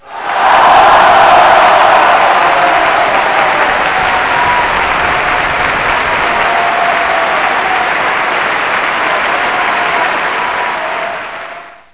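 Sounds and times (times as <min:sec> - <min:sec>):
stadium crowd: 0:00.0 - 0:11.9.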